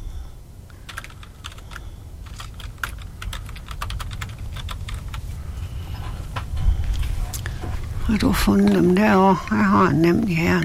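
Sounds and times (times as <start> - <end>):
typing on a computer keyboard: 0.7 - 5.2
speech: 8.1 - 10.6.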